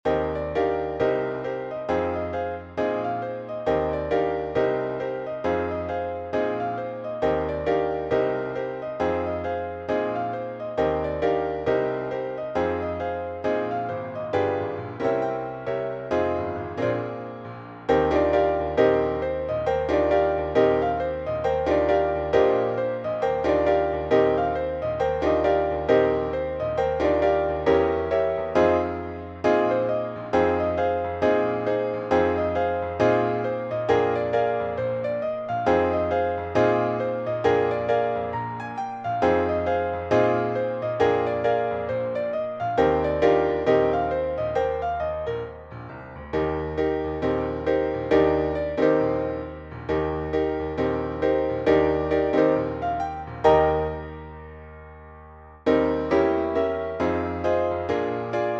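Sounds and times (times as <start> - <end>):
piano note E flat: 0.0 - 58.5.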